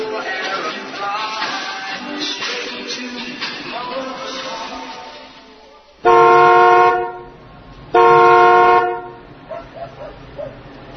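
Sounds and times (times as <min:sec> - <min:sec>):
car horn honking: 0:06.0 - 0:09.3.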